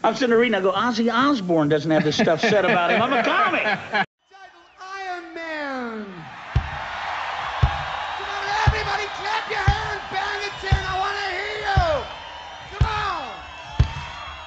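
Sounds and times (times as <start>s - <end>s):
speech: 0.0s - 4.1s
laughter: 2.0s - 4.1s
large crowd shouting yeah in unison: 4.3s - 14.4s
steady thumps: 6.5s - 14.2s.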